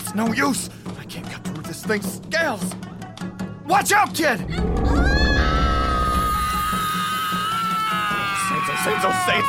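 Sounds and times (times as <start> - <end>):
speech: 0.1 - 1.3, 1.9 - 2.9, 3.7 - 5.3, 8.8 - 9.4
young girl screaming: 4.5 - 9.4.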